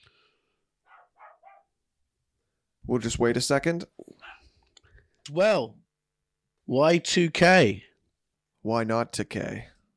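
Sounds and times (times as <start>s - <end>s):
dog barking in the living room: 0.9s - 1.7s
speech: 2.9s - 4.0s, 5.3s - 5.8s, 6.7s - 7.9s, 8.6s - 9.7s.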